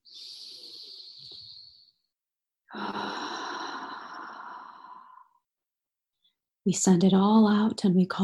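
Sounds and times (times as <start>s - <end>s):
deep breath in and out during a guided breathing exercise: 0.0s - 2.0s, 2.7s - 5.5s
speech: 6.6s - 8.2s.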